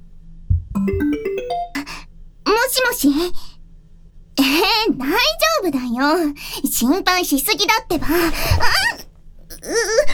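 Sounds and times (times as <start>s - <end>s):
speech: 0.8s - 1.2s, 2.7s - 3.5s, 4.4s - 9.0s, 9.6s - 10.1s
phone ringtone for an incoming call: 0.8s - 2.0s.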